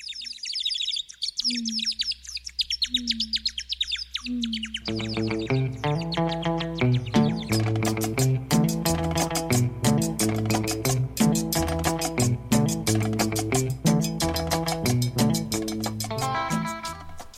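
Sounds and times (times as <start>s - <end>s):
bright chirping bird calls: 0.0s - 17.3s
low hum: 1.4s - 13.1s
full band playing upbeat cumbia with driving percussion: 7.2s - 17.3s.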